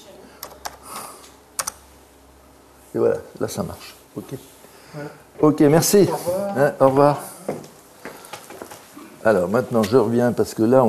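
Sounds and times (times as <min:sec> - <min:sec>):
computer keyboard key clicks: 0:00.4 - 0:00.8, 0:01.6 - 0:01.8
speech: 0:03.0 - 0:07.7, 0:09.2 - 0:10.8.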